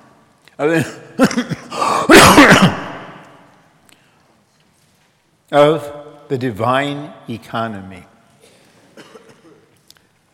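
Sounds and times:
speech: 0.6s - 1.6s, 5.5s - 8.1s
person with chest congestion coughing: 0.8s - 3.0s, 8.4s - 9.7s.

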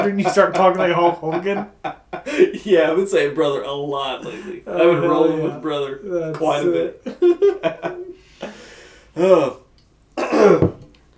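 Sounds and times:
speech: 0.0s - 8.6s, 9.2s - 9.6s, 10.4s - 10.8s
laughter: 0.0s - 9.6s
person coughing into the microphone: 10.2s - 10.9s
throat clearing: 10.2s - 10.9s.

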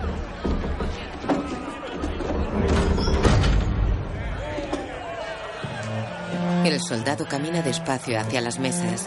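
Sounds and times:
two heavy hall doors thudding shut: 0.0s - 6.0s
murmur of crowd chatter: 0.0s - 9.0s
speech: 6.8s - 9.0s.

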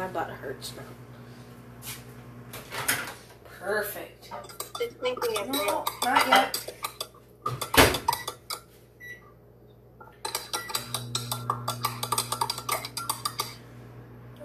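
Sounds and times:
speech: 0.2s - 1.1s, 3.6s - 6.8s
small spoon clinking and scraping inside a cup while stirring: 4.4s - 8.7s, 10.2s - 13.6s.

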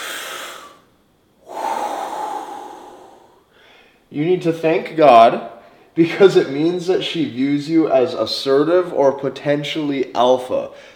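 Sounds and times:
deep breaths in a slow breathing demonstration: 0.0s - 4.1s, 10.7s - 10.9s
speech: 4.1s - 10.9s.

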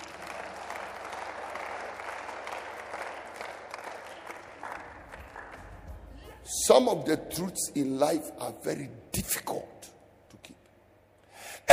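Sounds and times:
audience applause: 0.0s - 5.8s
speech: 6.5s - 10.0s.

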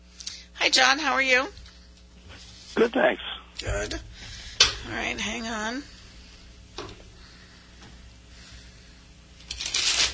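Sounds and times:
speech: 0.7s - 1.6s, 2.8s - 4.1s, 4.8s - 6.0s
deck of tarot cards being shuffled: 9.4s - 10.1s.

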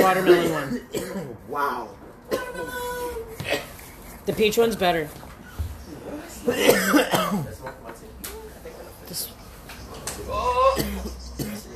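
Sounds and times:
person coughing: 0.0s - 1.4s, 2.3s - 3.8s, 6.4s - 7.6s, 10.4s - 11.7s
speech: 0.1s - 3.6s, 4.3s - 5.2s, 6.4s - 7.8s.

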